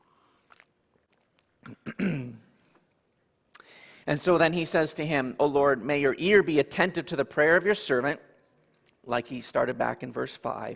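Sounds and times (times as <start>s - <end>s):
person clearing throat: 1.6s - 2.6s
speech: 4.1s - 8.3s, 9.0s - 10.7s.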